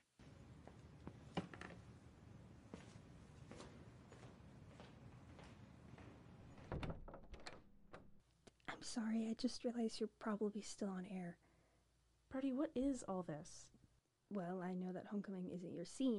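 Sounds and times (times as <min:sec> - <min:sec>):
door being pulled open for a visitor: 0:06.4 - 0:08.2
speech: 0:08.8 - 0:11.4, 0:12.3 - 0:16.1.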